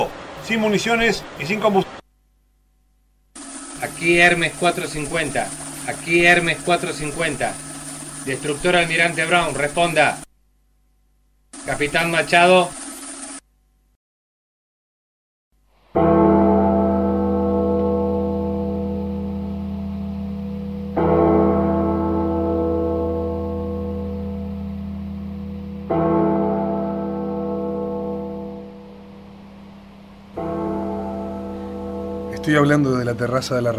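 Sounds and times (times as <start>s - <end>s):
speech: 0.4s - 2.0s, 4.0s - 7.6s, 8.2s - 10.2s, 11.6s - 12.8s, 32.5s - 33.7s
heavy bells tolling to call a city evacuation: 3.9s - 10.2s, 16.0s - 33.7s.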